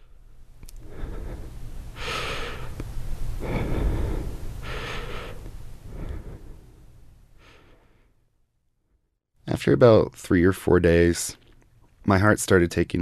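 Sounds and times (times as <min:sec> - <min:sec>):
person imitating light shallow painful breaths after breathing tube removal: 0:00.0 - 0:08.3
speech: 0:09.6 - 0:11.4, 0:12.0 - 0:13.0.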